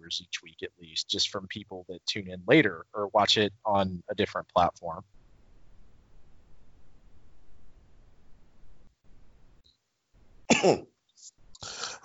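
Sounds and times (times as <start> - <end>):
speech: 0.1 - 5.2, 10.6 - 10.9, 11.6 - 12.0
single sharp loud cough: 10.5 - 10.8.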